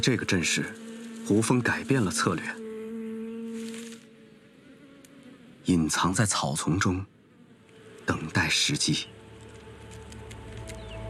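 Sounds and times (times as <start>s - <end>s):
speech: 0.0s - 2.6s, 5.6s - 7.1s, 8.1s - 9.2s
honeybees heavy with pollen flying back to their hive: 0.0s - 11.0s.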